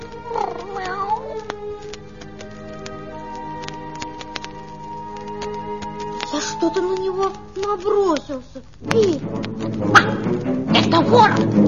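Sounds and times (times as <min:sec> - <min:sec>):
cat yowling: 0:00.0 - 0:01.9
sharp clicks: 0:00.0 - 0:11.6
speech: 0:06.8 - 0:11.6.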